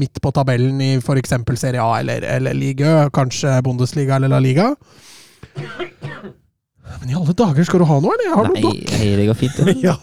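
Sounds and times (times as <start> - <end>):
speech: 0.0 - 10.0
person coughing harshly: 5.5 - 6.5
laughter: 8.5 - 10.0.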